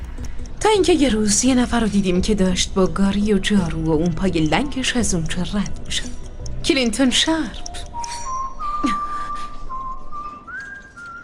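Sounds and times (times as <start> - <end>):
speech: 0.6 - 6.2, 6.8 - 7.9
person whistling a slow steady tune: 7.8 - 11.2.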